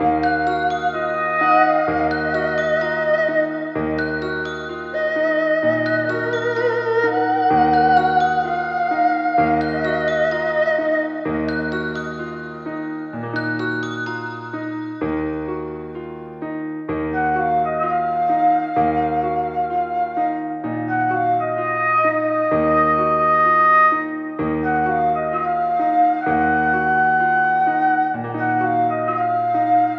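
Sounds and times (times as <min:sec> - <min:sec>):
voice in a sad loop: 0:00.0 - 0:14.6
flute in a sad loop: 0:00.0 - 0:29.9
piano in a sad loop: 0:00.0 - 0:29.9.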